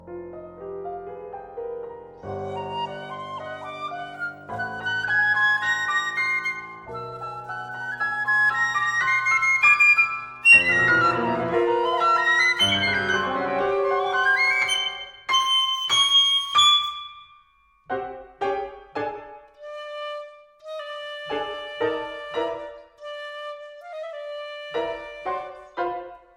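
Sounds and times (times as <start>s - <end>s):
piccolo and piano sonata: 0.0s - 26.3s.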